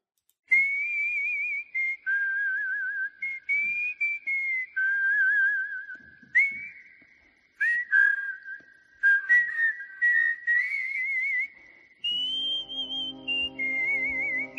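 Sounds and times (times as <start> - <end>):
person whistling a jaunty opening theme tune: 0.5 - 14.5
brief low buzzy sound: 12.1 - 14.5.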